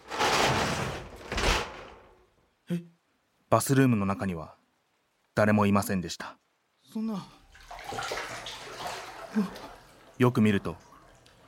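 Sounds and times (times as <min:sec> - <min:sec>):
bathroom door opening: 0:00.0 - 0:02.2
speech: 0:02.7 - 0:02.9, 0:03.5 - 0:04.6, 0:05.4 - 0:08.6, 0:09.3 - 0:10.9.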